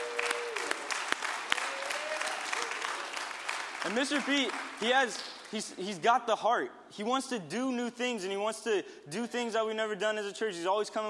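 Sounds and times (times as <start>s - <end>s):
church audience applause: 0.0s - 5.5s
speech: 3.8s - 11.0s.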